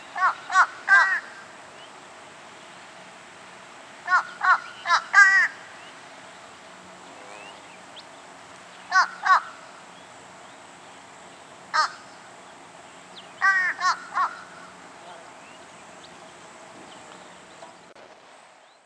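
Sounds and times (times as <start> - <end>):
fish crow uttering nasal caws: 0.2 - 1.5, 4.0 - 5.7, 8.9 - 9.8, 11.7 - 12.3, 13.4 - 15.3.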